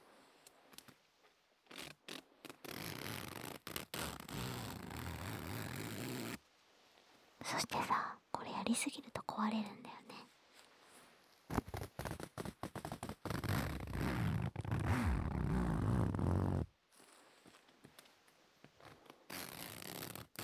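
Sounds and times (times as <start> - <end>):
zipper opening and closing: 1.7 - 6.4, 11.5 - 17.6, 18.8 - 20.4
speech: 7.5 - 10.0.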